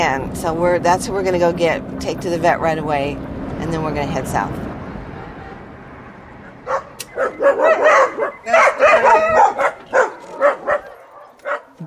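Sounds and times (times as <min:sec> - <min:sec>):
speech: 0:00.0 - 0:04.7
many hard-to-adopt dogs barking and yipping inside a small home in Rosarito: 0:06.2 - 0:11.8.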